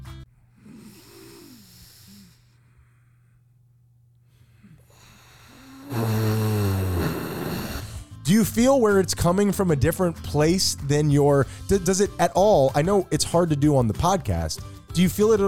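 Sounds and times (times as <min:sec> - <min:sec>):
deep breathing as a stress-relief exercise: 0:00.4 - 0:08.2, 0:11.4 - 0:11.7
speech: 0:08.3 - 0:15.4.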